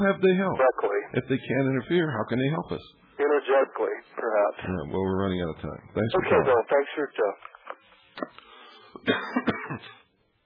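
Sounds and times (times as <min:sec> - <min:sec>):
speech: 0:00.0 - 0:07.6, 0:08.2 - 0:08.4, 0:09.0 - 0:10.0
person with a respiratory illness coughing: 0:09.0 - 0:10.1.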